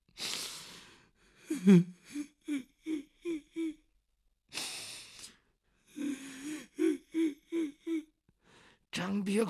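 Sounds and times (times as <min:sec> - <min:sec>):
voice imitating crying with sobbing pulses and gasping breaths: 0:01.5 - 0:03.8, 0:06.0 - 0:08.1.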